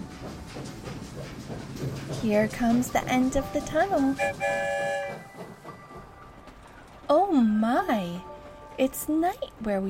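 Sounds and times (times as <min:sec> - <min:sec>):
train rolling on tracks: 0:00.0 - 0:09.8
speech: 0:02.2 - 0:05.0, 0:07.1 - 0:09.8
horn-like tone: 0:04.2 - 0:05.2.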